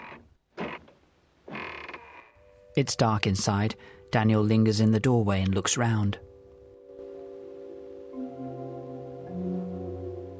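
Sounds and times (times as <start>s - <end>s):
old door creaking as it is pushed open: 0.0s - 2.5s
speech: 2.8s - 6.3s.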